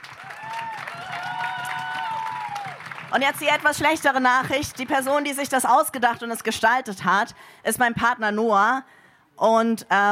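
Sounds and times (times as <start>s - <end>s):
people whooping and cheering: 0.0s - 3.0s
audience at a Pride event applauding: 0.0s - 5.3s
speech: 3.1s - 10.0s.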